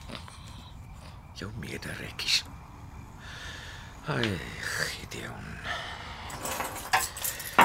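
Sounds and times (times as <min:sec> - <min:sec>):
speech: 0:01.4 - 0:02.5, 0:04.0 - 0:06.8
keys jangling: 0:06.3 - 0:07.6.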